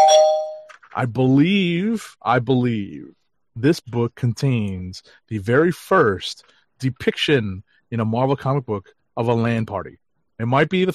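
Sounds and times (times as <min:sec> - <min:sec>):
bell chime: 0:00.0 - 0:00.7
speech: 0:01.0 - 0:10.9.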